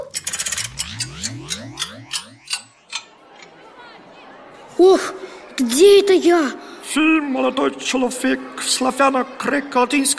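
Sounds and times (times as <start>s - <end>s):
ringing metallic whir: 0.0s - 3.2s
clock hands being turned forward, ticking: 0.0s - 3.5s
speech: 4.8s - 10.1s.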